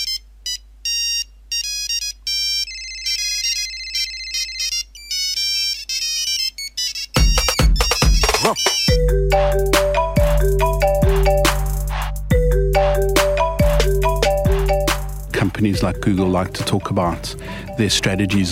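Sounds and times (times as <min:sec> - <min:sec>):
cell phone ringtone with beeping melody: 0:00.0 - 0:18.5
music track with a steady bass beat: 0:07.2 - 0:18.5
speech: 0:15.9 - 0:18.5.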